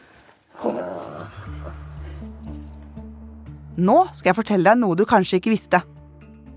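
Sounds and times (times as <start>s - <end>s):
dog happy growling while back scratched: 0.6s - 2.2s
speech: 3.8s - 5.9s.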